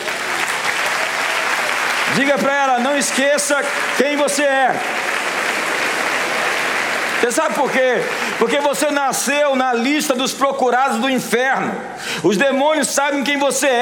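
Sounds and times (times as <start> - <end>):
audience at a worship service applauding: 0.0 - 9.8
speech: 2.2 - 5.1, 7.2 - 13.8.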